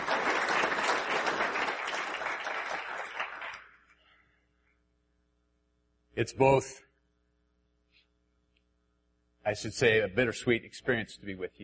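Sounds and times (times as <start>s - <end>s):
church audience applauding to welcome a pastor: 0.0s - 3.8s
speech: 6.2s - 6.9s, 9.5s - 11.6s.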